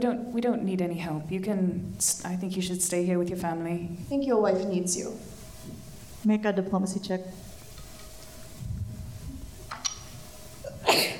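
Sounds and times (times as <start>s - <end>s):
speech: 0.0s - 7.5s
person sneezing: 10.7s - 11.1s.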